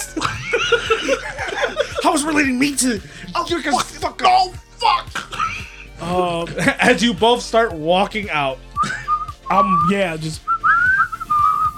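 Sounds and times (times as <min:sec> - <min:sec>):
laughter: 0:00.0 - 0:02.5, 0:05.2 - 0:07.2, 0:08.8 - 0:09.2
speech: 0:02.1 - 0:05.1, 0:06.0 - 0:08.7, 0:09.5 - 0:10.5
person whistling a wavering off-key tune: 0:08.8 - 0:11.7.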